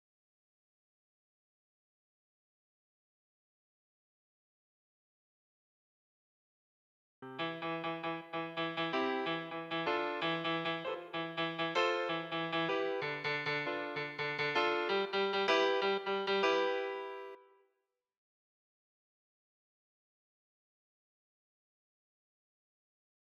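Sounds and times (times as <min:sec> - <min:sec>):
piano: 0:07.2 - 0:17.6.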